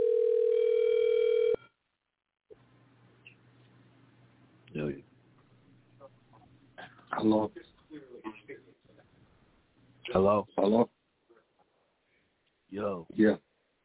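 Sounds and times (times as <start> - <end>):
telephone dial tone while placing a call: 0.0 - 1.6
speech: 7.2 - 7.7, 10.1 - 11.0, 12.8 - 13.4.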